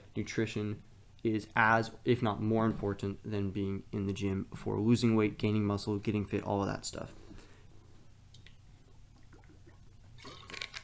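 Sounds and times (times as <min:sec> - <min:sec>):
speech: 0:00.2 - 0:07.2
person drinking water with wet sips and swallows: 0:08.4 - 0:10.8.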